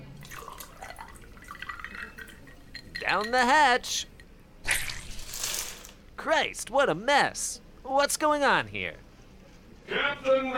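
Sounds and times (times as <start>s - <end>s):
drink pouring into a glass: 0.2s - 3.3s
speech: 3.1s - 4.1s, 6.2s - 9.0s, 9.9s - 10.5s.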